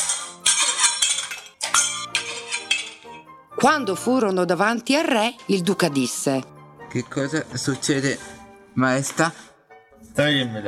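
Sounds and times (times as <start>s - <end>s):
crockery smashing and clattering: 0.0s - 3.2s
ringing clinks of shards: 0.0s - 3.2s
speech: 3.6s - 9.5s, 10.1s - 10.6s.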